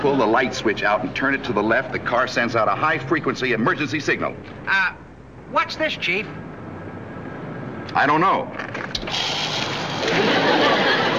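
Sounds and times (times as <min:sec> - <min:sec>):
speech: 0:00.0 - 0:06.4, 0:07.9 - 0:10.7
car windshield washer spraying on an old car: 0:09.0 - 0:10.6
laughter: 0:10.0 - 0:11.1.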